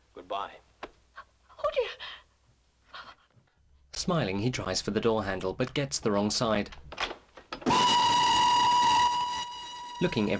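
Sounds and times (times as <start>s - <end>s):
speech: 0.2s - 0.7s, 4.0s - 6.9s, 10.0s - 10.3s
shrill train whistle: 7.7s - 10.3s.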